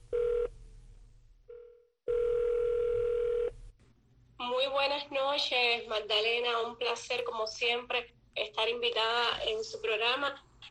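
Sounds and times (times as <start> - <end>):
low hum: 0.0 - 10.7
telephone ringback tone as a call is placed: 1.5 - 3.5
speech: 4.7 - 10.5.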